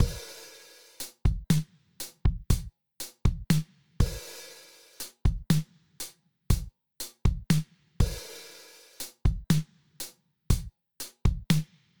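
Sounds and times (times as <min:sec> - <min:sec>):
kick drum with low enhancement: 0:00.0 - 0:00.3, 0:01.2 - 0:04.2, 0:05.2 - 0:05.7, 0:06.5 - 0:08.3, 0:09.2 - 0:09.7, 0:10.5 - 0:11.7.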